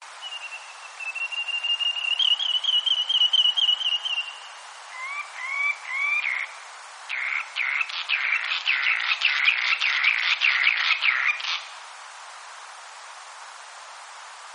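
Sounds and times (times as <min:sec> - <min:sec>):
surfbird whistled song: 0:00.1 - 0:11.7.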